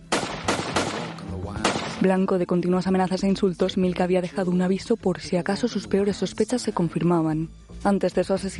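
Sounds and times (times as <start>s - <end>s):
gunshots in an office shooting: 0.0s - 2.2s
speech: 2.0s - 8.5s.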